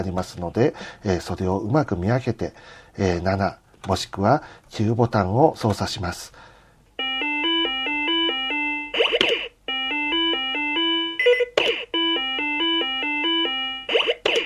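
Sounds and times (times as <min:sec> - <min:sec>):
speech: 0:00.0 - 0:06.5
electronic game notification chimes: 0:07.0 - 0:14.4.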